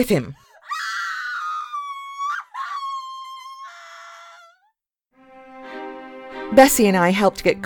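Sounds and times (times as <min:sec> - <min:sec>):
speech: 0:00.0 - 0:00.5, 0:06.5 - 0:07.6
burnt woman cook shrieking in pain: 0:00.5 - 0:04.8.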